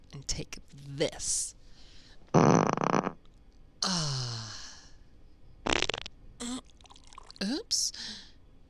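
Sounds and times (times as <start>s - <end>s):
speech: 0.1s - 1.6s
farts: 2.3s - 3.2s, 5.6s - 6.1s.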